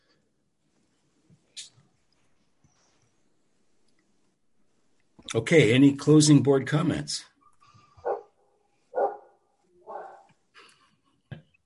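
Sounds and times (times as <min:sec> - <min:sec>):
speech: 0:05.2 - 0:07.3
dog barking: 0:08.0 - 0:10.3.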